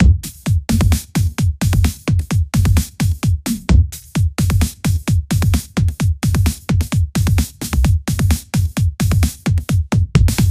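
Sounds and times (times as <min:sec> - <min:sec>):
drum and bass music: 0:00.0 - 0:10.4.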